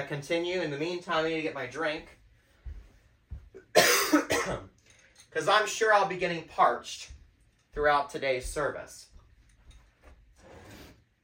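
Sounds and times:
speech: 0:00.0 - 0:02.2, 0:03.8 - 0:04.7, 0:05.3 - 0:09.1
person with a cold coughing: 0:03.6 - 0:04.7.

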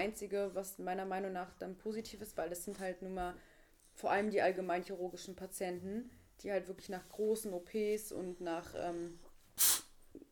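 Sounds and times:
speech: 0:00.0 - 0:09.7
person sneezing: 0:09.6 - 0:10.0.

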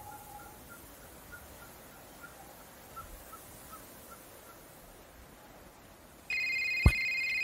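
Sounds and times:
telephone ringing: 0:06.3 - 0:07.4.

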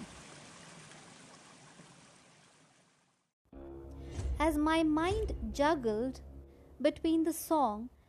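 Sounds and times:
rainwater running off a tiled roof: 0:00.0 - 0:03.2
speech: 0:04.4 - 0:08.0.

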